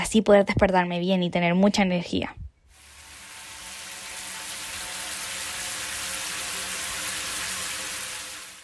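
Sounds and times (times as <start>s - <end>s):
speech: 0.1s - 2.4s
shower water running: 2.7s - 8.6s.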